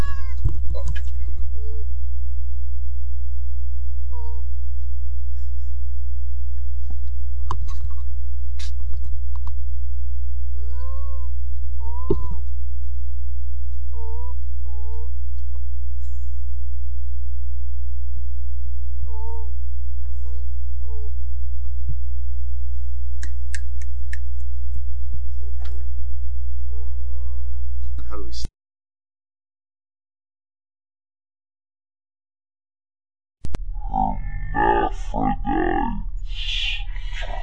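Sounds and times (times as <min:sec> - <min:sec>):
cat meowing: 0:00.0 - 0:01.9, 0:10.6 - 0:12.4, 0:13.9 - 0:15.1, 0:19.1 - 0:21.2, 0:26.7 - 0:27.6
steady low hum: 0:00.0 - 0:28.5, 0:33.5 - 0:37.4.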